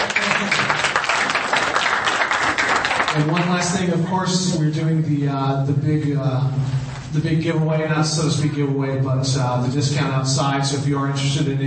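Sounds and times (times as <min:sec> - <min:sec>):
audience applause: 0:00.0 - 0:03.7
speech: 0:03.2 - 0:11.6.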